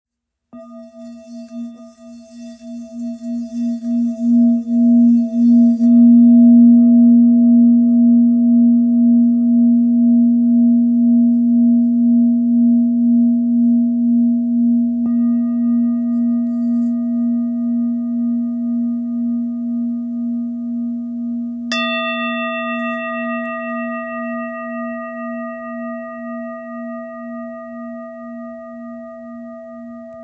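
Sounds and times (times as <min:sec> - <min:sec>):
antique singing bowl tone in A sharp: 0:00.6 - 0:30.2.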